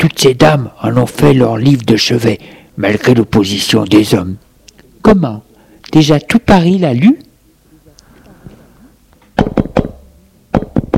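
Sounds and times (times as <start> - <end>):
speech: 0.0 - 7.3
firm knocking on a door: 9.4 - 10.9.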